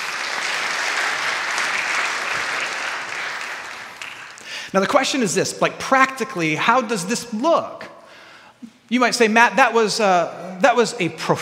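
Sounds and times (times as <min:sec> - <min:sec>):
audience applauding: 0:00.0 - 0:04.6
speech: 0:04.7 - 0:07.9, 0:08.9 - 0:11.4.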